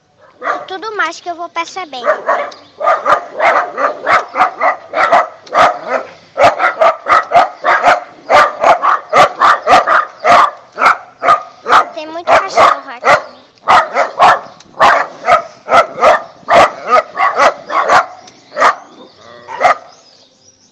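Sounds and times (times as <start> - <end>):
fierce dogs barking at a front gate: 0.2 - 0.8, 2.0 - 20.0
speech: 0.7 - 4.1.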